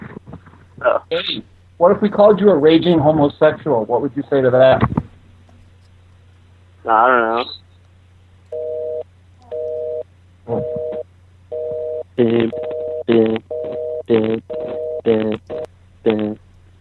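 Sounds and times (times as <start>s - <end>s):
faint hum: 0.0s - 16.8s
speech: 0.8s - 5.0s, 6.8s - 7.6s
electronic tone bursts: 8.5s - 16.4s
cell phone busy signal beeps: 8.6s - 15.1s
cell phone number dialing: 8.6s - 15.7s.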